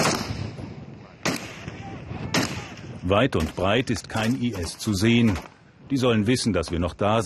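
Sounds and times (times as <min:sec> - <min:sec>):
gunshots fired into the air: 0:00.0 - 0:05.6
wind outdoors: 0:00.0 - 0:07.2
speech: 0:03.1 - 0:07.2.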